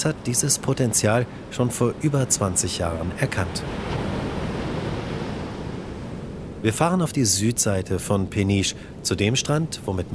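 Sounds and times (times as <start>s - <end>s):
speech: 0.0s - 4.0s, 6.6s - 10.1s
heavy ocean surf rolling onto a surfing beach at Peniche Portugal: 0.0s - 10.1s.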